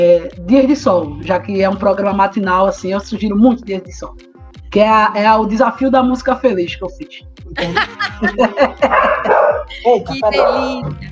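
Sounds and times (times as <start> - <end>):
speech: 0.0 - 11.0
people laughing: 7.5 - 11.0
small dog yapping with high-pitched barks: 8.9 - 9.7, 10.3 - 10.8.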